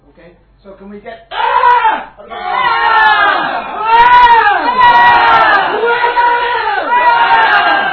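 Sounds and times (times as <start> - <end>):
speech: 0.2 - 3.9
crowd screaming together: 1.3 - 7.9.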